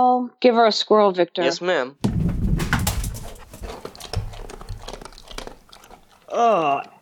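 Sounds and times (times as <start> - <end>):
speech: 0.0 - 2.1, 6.3 - 6.9
female dog eating: 2.0 - 7.0.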